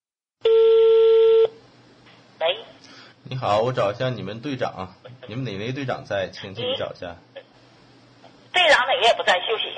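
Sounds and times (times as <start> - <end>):
telephone dialling tone: 0.4 - 1.6
speech: 3.3 - 7.3, 8.6 - 9.7.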